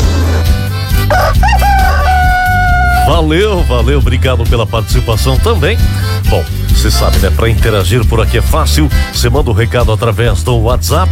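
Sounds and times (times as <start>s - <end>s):
rooster on a small farm crowing: 1.1s - 3.1s
speech: 3.2s - 11.1s.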